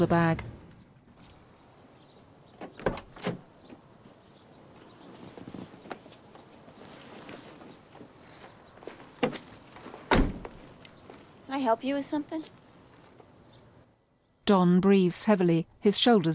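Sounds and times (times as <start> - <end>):
speech: 0.0 - 0.5, 11.6 - 12.6, 14.5 - 16.3
red car door opening and shutting: 2.6 - 3.8, 10.1 - 10.6
shuffling and scraping: 3.3 - 11.4
solid thud: 10.1 - 10.6.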